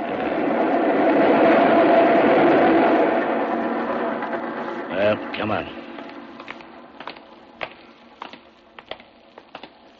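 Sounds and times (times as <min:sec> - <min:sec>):
express train roaring through a station at speed: 0:00.0 - 0:06.9
speech: 0:05.4 - 0:05.8.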